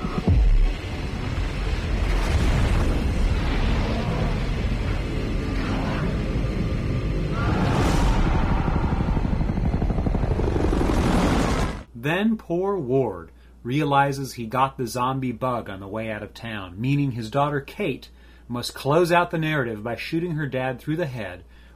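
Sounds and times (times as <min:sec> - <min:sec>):
helicopter-like churning: 0:00.0 - 0:11.9
nuclear bomb explosion with deep thundering roar: 0:00.2 - 0:11.9
speech: 0:12.1 - 0:21.5.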